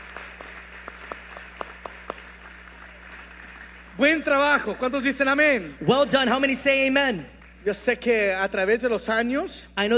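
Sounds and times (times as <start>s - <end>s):
scattered audience applause for graduates in a large room: 0.0s - 5.6s, 6.7s - 8.3s
steady hum: 0.0s - 9.9s
speech: 4.0s - 9.9s.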